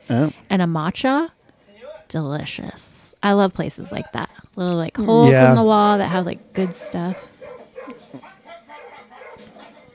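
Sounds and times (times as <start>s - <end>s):
speech: 0.1s - 1.4s, 2.1s - 7.3s
dog yipping: 6.6s - 9.6s.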